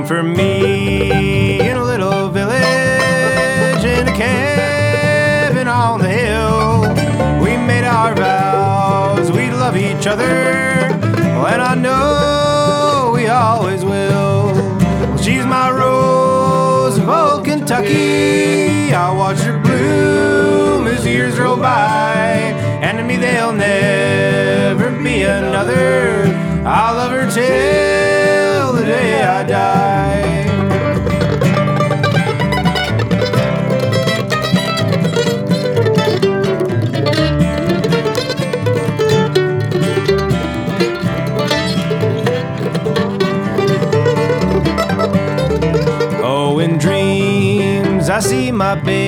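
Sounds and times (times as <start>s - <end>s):
music piece in key G: 0.2s - 49.0s.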